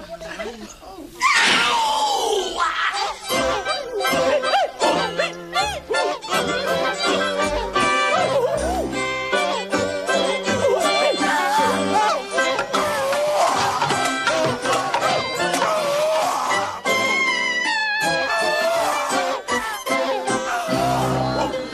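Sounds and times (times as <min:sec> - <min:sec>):
human voices shrieking from a replica torture instrument: 0:01.2 - 0:03.2, 0:11.0 - 0:16.9, 0:17.6 - 0:21.7
steady musical backing: 0:03.1 - 0:21.7.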